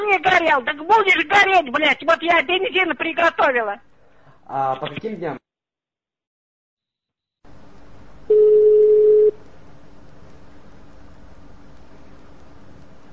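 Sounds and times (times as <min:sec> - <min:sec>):
speech: 0:00.0 - 0:03.9, 0:04.5 - 0:05.4
electronic telephone line beep after a call is hung up: 0:08.3 - 0:09.4.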